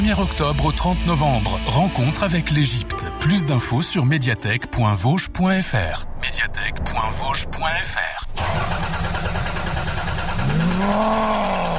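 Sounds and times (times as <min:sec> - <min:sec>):
speech: 0:00.1 - 0:09.4, 0:10.5 - 0:11.7
car engine idling and revving: 0:08.4 - 0:11.7.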